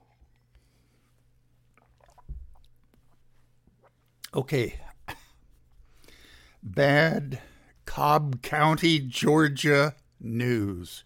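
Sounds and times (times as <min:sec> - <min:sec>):
low steady hum: 0:00.0 - 0:11.0
person sipping a drink: 0:01.6 - 0:04.3
swallow: 0:01.7 - 0:03.2
soft wet mouth noises: 0:01.7 - 0:04.4
speech: 0:04.4 - 0:04.8, 0:06.8 - 0:11.0.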